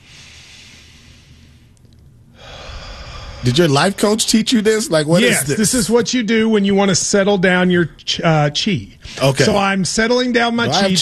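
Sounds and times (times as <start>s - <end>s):
slow deliberate breathing in and out as a calming yoga-style exercise: 0.0s - 3.6s
speech: 3.4s - 11.0s.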